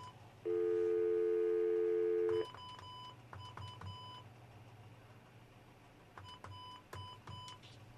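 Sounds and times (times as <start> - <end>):
telephone tones as a call is placed: 0.0 - 3.1.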